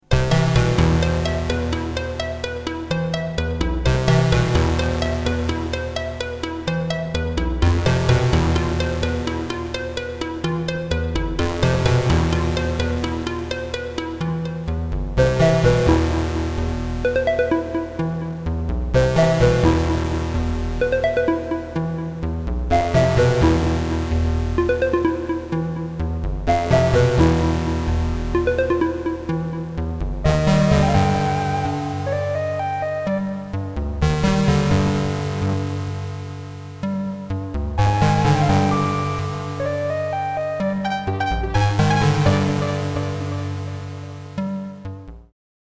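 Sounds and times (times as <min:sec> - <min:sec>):
synthesizer music: 0:00.3 - 0:35.9, 0:37.7 - 0:44.5.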